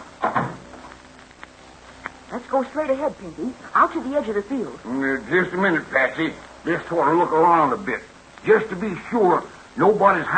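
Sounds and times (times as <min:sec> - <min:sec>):
door shutting with a solid thud: 0:00.2 - 0:00.7
speech: 0:02.4 - 0:10.3.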